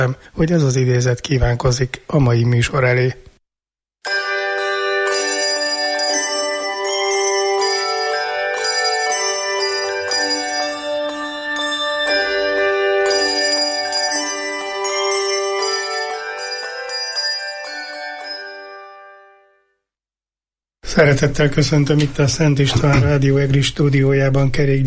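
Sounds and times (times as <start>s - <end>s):
speech: 0.0s - 3.3s, 21.0s - 24.8s
church bells pealing: 4.1s - 19.4s.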